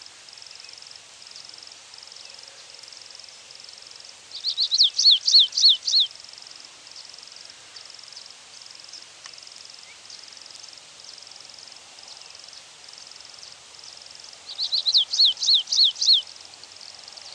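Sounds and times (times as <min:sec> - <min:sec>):
Stripe-tailed yellow finch Sicalis citrina citrina singing: 0:04.4 - 0:06.1, 0:14.5 - 0:16.3.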